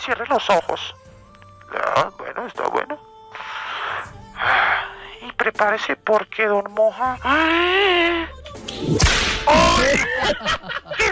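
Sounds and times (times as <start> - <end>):
speech: 0.0 - 1.1, 1.7 - 3.1, 5.4 - 10.8
whip crack: 9.0 - 9.5
laughter: 9.8 - 11.1.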